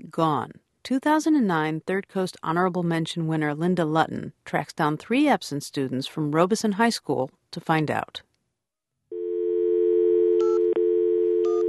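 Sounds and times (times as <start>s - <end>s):
speech: 0.1s - 8.3s
telephone dial tone: 9.1s - 11.6s.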